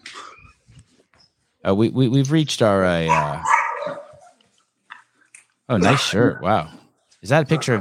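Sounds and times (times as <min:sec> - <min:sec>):
speech: 0:01.6 - 0:03.5, 0:05.7 - 0:07.7
brown dog with a little black on its back barking: 0:03.1 - 0:04.4, 0:05.8 - 0:06.4, 0:07.4 - 0:07.7.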